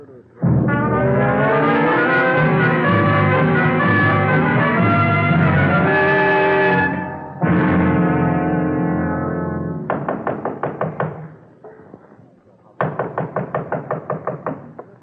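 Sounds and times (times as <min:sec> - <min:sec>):
held musical chord: 0:00.4 - 0:09.9
firm knocks on a door: 0:09.9 - 0:11.3, 0:12.8 - 0:14.8.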